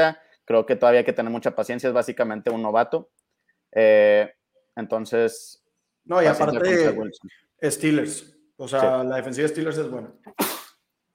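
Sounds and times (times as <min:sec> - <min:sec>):
speech: 0:00.0 - 0:10.6
sneeze: 0:10.3 - 0:10.9.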